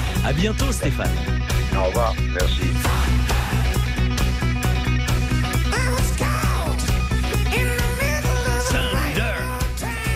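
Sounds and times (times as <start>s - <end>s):
loud hard rock song with drums, guitars and wailing lead vocal: 0.0s - 10.1s
speech: 0.2s - 3.6s.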